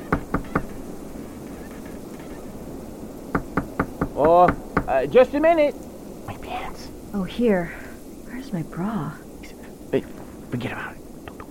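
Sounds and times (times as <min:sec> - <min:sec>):
low steady noise: 0:00.0 - 0:11.4
knuckles knocking on the door of an ice house on a snowy frozen lake: 0:00.1 - 0:00.8, 0:03.3 - 0:04.9
speech: 0:04.3 - 0:05.9, 0:06.7 - 0:07.8, 0:08.4 - 0:09.2, 0:09.9 - 0:11.0.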